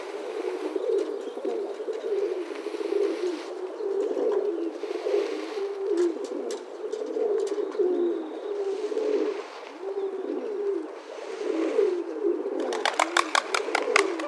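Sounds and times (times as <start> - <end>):
rock dove cooing in Poland: 0.0 - 14.2
rock dove clapping wingbeats: 12.6 - 14.2.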